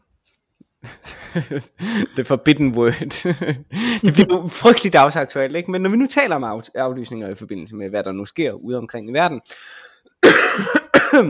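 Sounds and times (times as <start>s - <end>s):
laughter: 0.9s - 2.3s, 2.9s - 4.5s
speech: 1.3s - 11.2s
person coughing: 10.2s - 11.2s.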